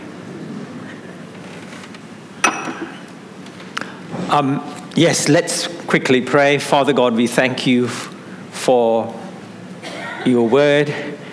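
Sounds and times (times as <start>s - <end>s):
glass of water set down and clinking: 2.4s - 3.1s
speech: 4.3s - 9.2s, 10.2s - 11.2s.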